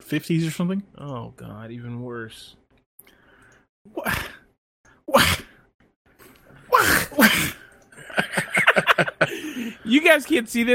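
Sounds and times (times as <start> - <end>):
speech: 0.1 - 2.6, 3.9 - 4.3, 9.9 - 10.7
man making sneeze-like noises: 5.1 - 5.6, 6.7 - 7.6
laughter: 8.0 - 9.6.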